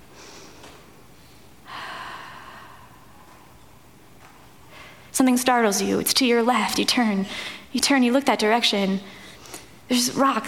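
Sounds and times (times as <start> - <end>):
person breathing quietly: 0.0 - 3.5, 4.7 - 5.1, 7.3 - 7.7, 9.0 - 9.9
speech: 5.2 - 9.2, 9.9 - 10.4.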